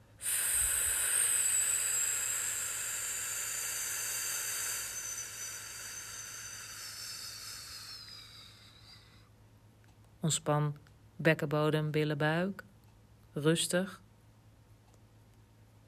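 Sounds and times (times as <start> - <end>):
person breathing out on an F sound during a relaxation breathing exercise: 0.0 - 9.4
speech: 10.2 - 12.7, 13.4 - 14.0.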